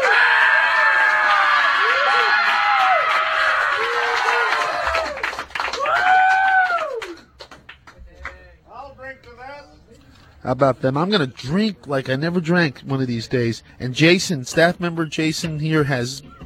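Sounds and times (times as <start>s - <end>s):
crowd cheering and screaming: 0.0s - 7.2s
speech: 10.5s - 16.4s.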